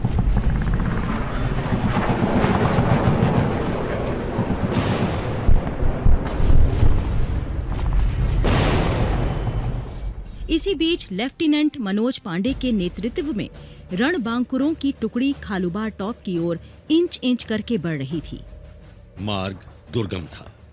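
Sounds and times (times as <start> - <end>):
crackling gunfire: 0.0 - 9.9
heavy booming explosions of war: 0.0 - 10.4
low rumble like aircraft: 0.0 - 10.5
sharp loud blasts: 1.1 - 9.9
speech: 10.6 - 18.5, 19.2 - 20.6.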